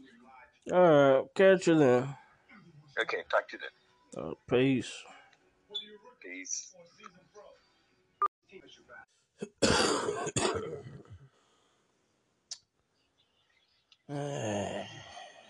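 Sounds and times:
speech: 0:00.6 - 0:02.2, 0:03.0 - 0:05.2, 0:05.8 - 0:07.2, 0:08.5 - 0:11.0, 0:14.1 - 0:15.1
person coughing: 0:09.4 - 0:11.1
person clearing throat: 0:09.4 - 0:11.2
short voiced groan-like sound: 0:14.1 - 0:15.4.

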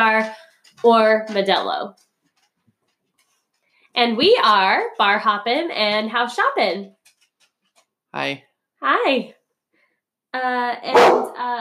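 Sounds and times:
speech: 0:00.0 - 0:02.1, 0:04.0 - 0:07.0, 0:08.1 - 0:09.4, 0:10.3 - 0:11.5
dog barking and yelping: 0:10.9 - 0:11.4.

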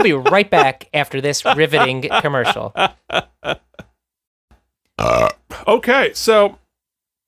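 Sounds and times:
speech: 0:00.0 - 0:03.6, 0:05.0 - 0:06.6
laughter: 0:00.0 - 0:03.9
loud burp: 0:05.0 - 0:05.6.

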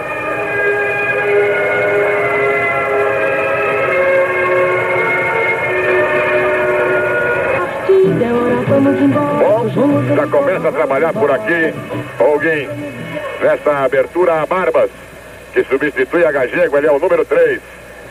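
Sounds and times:
national anthem over stadium loudspeakers: 0:00.0 - 0:13.7
stadium crowd noise: 0:04.7 - 0:14.2
speech: 0:10.0 - 0:15.0, 0:15.6 - 0:18.0.

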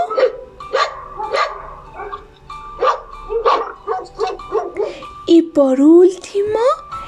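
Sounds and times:
dog barking: 0:00.0 - 0:05.0
speech: 0:05.6 - 0:06.7.

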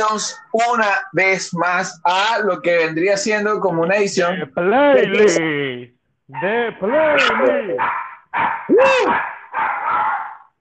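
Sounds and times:
speech: 0:00.0 - 0:09.3
dog barking: 0:07.2 - 0:10.5.

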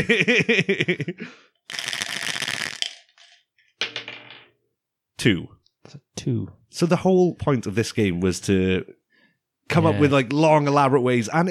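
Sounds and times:
laughter: 0:00.0 - 0:01.3
speech: 0:00.0 - 0:01.5, 0:05.2 - 0:09.0, 0:09.7 - 0:11.4
dice rattling and clattering across a hard surface: 0:01.7 - 0:04.4
brief melodic vocal-like sound: 0:09.7 - 0:10.3.

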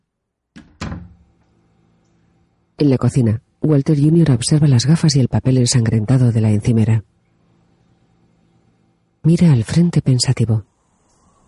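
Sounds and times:
door being closed: 0:00.6 - 0:01.3
speech: 0:02.8 - 0:07.1, 0:09.2 - 0:10.7.

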